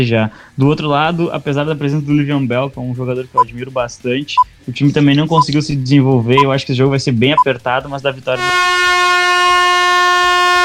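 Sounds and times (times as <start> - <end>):
speech: 0.0 - 9.0
loud sustained air horn blast: 8.4 - 10.6.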